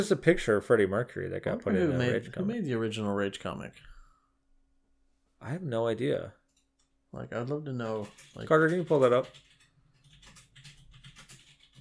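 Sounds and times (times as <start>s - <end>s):
speech: 0.0s - 4.0s, 5.4s - 6.4s, 7.1s - 9.5s
typing on a computer keyboard: 7.8s - 11.7s.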